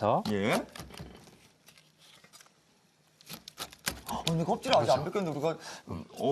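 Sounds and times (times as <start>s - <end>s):
speech: 0.0s - 0.9s, 4.2s - 6.2s
knife cutting away membrane from food: 0.2s - 2.6s, 3.2s - 4.9s.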